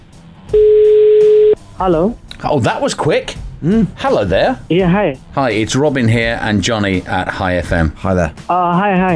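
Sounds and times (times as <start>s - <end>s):
outgoing telephone call ringing tone: 0.6s - 1.6s
speech: 1.8s - 9.1s.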